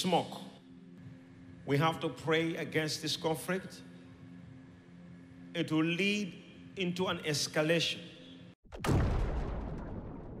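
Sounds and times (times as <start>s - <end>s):
speech: 0.0s - 0.4s, 1.6s - 3.9s, 5.5s - 8.1s, 8.7s - 9.0s
explosions over a city at night: 8.8s - 10.3s.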